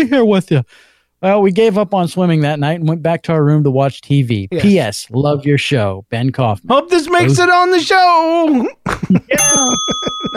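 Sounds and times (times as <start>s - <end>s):
speech: 0.0s - 10.3s
bright bell ringing: 9.4s - 10.3s.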